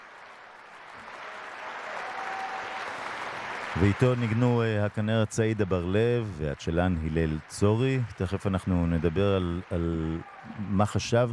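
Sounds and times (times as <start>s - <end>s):
large audience applauding: 0.0s - 11.3s
faint shout of bravo: 1.9s - 2.9s, 10.0s - 10.8s
speech: 3.8s - 11.3s.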